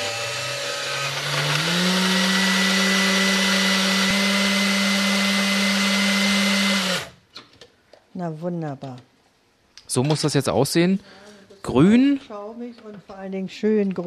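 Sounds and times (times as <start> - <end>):
food processor pureeing basil leaves with sour cream: 0.0 - 7.2
speech: 8.2 - 9.1, 9.9 - 14.0.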